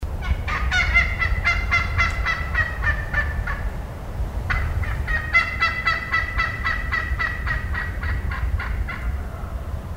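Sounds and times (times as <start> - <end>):
excited turkey hen yelping: 0.2 - 3.6, 4.5 - 9.6.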